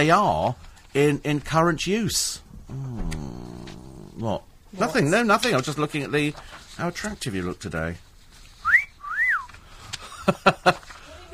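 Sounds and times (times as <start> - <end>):
speech: 0.0 - 3.1, 4.2 - 8.1, 10.3 - 10.9
person whistling at someone: 8.6 - 9.5.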